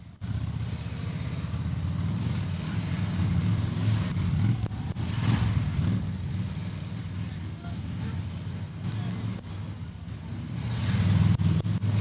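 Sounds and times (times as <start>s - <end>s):
motorcycle engines rumbling riding figure eights around traffic cones: 0.0s - 11.9s
faint voices: 7.0s - 10.6s.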